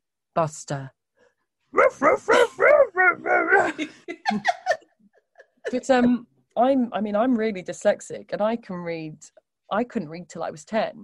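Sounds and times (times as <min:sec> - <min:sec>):
speech: 0:00.4 - 0:01.0, 0:01.9 - 0:04.8, 0:05.7 - 0:11.0
human voice imitating a dog barking: 0:01.8 - 0:03.9.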